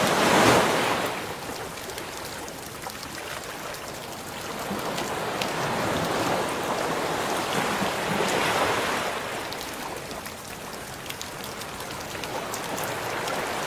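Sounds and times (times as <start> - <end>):
ocean surf surging: 0.0 - 1.4, 4.6 - 9.6
rain falling over the open sea: 0.0 - 13.6.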